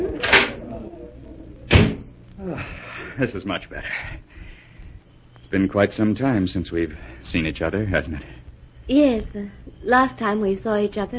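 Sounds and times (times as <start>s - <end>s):
door thud: 1.7s - 2.1s
speech: 3.2s - 4.3s, 5.5s - 11.1s.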